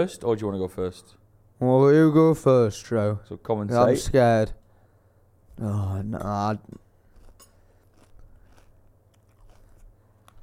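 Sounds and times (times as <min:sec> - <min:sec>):
speech: 0:00.0 - 0:04.6, 0:05.6 - 0:06.8
chewing a crunchy puffed snack at a microphone: 0:07.0 - 0:10.4.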